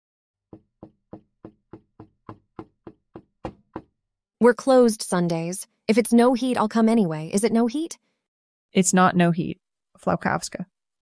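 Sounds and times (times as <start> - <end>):
firm knocks on a kitchen door: 0.5 - 4.0
speech: 4.4 - 8.0, 8.7 - 10.7.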